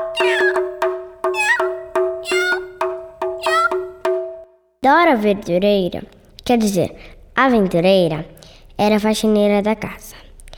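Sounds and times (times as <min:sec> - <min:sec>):
cat meowing: 0:00.2 - 0:00.7, 0:01.3 - 0:02.7, 0:03.4 - 0:03.7
speech: 0:04.8 - 0:10.2.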